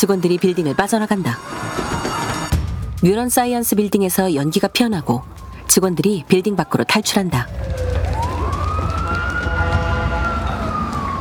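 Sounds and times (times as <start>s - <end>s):
speech: 0.0s - 1.9s, 3.0s - 8.0s
fire truck siren wailing at a science building: 0.0s - 11.1s
low traffic noise: 0.0s - 11.1s.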